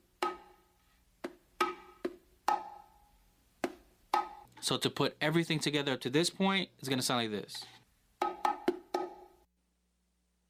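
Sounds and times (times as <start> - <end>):
bongo playing a martillo pattern with thumb tap and accented open tone: 0.2 - 3.0, 3.6 - 4.5, 8.2 - 9.4
speech: 4.6 - 7.8.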